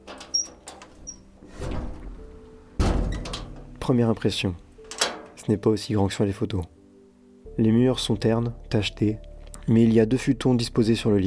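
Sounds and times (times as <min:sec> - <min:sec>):
faint click of front door latch: 0:00.0 - 0:03.8, 0:04.8 - 0:05.4
heavy thunk of front door: 0:00.0 - 0:04.2
apartment front door unlatched and swung open: 0:00.0 - 0:05.4
speech: 0:03.9 - 0:04.7, 0:05.5 - 0:06.8, 0:07.6 - 0:11.2.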